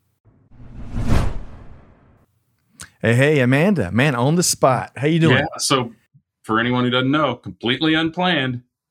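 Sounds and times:
swoosh transition sound effect: 0:00.4 - 0:02.2
speech: 0:03.0 - 0:08.7.

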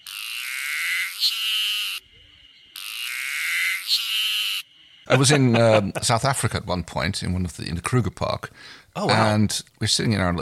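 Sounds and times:
harsh noisy cicada call: 0:00.0 - 0:05.6
speech: 0:01.2 - 0:01.5, 0:05.1 - 0:10.4
laughter: 0:05.1 - 0:06.5.

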